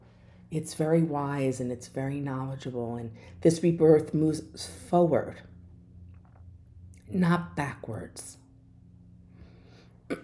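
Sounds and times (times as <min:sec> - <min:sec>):
low humming background: 0:00.0 - 0:10.2
speech: 0:00.5 - 0:05.5, 0:07.1 - 0:08.4
throat clearing: 0:10.1 - 0:10.2.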